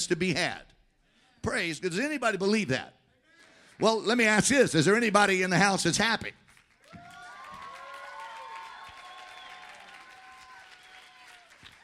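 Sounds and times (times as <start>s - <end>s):
speech: 0.0s - 0.7s, 1.4s - 3.0s, 3.8s - 6.4s
audience clapping: 6.2s - 11.8s
several voices whooping and hollering: 6.9s - 11.8s.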